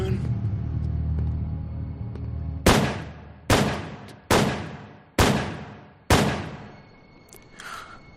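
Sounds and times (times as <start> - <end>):
low rumbling background: 0.0 - 8.1
gunshots fired at close range: 2.6 - 6.7.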